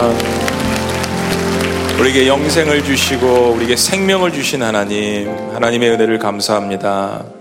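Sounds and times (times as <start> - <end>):
crowd clapping: 0.0 - 5.3
speech: 2.0 - 7.3.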